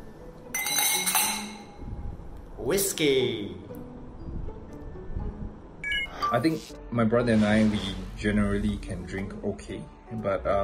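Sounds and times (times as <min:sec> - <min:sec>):
glasses clinking in a toast during a whiskey drinking session at home: 0:00.5 - 0:01.8
speech: 0:02.6 - 0:03.8, 0:06.3 - 0:10.6.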